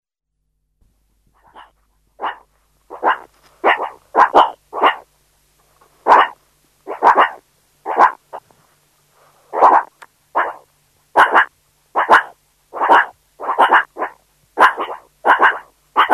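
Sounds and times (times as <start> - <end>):
meerkat barking: 1.4 - 5.1, 6.0 - 8.5, 9.5 - 16.1.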